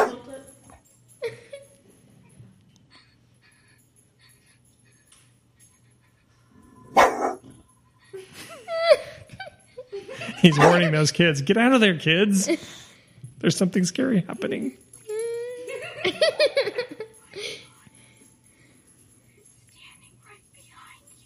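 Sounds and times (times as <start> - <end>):
dog barking: 0.0 - 0.3, 6.9 - 7.6, 10.4 - 10.9
laughter: 8.0 - 11.3, 15.6 - 17.1
speech: 10.4 - 12.8, 13.4 - 14.8.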